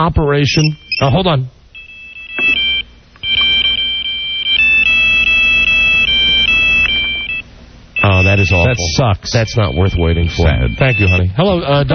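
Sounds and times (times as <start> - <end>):
speech: 0.0 - 1.6, 8.1 - 11.9
faint hum: 0.0 - 11.9
shrill electronic mobile phone ringtone previewed from ringer menu: 1.8 - 11.3.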